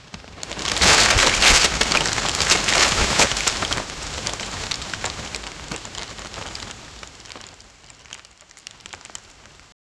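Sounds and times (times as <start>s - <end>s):
roaring cacophony: 0.4s - 8.2s.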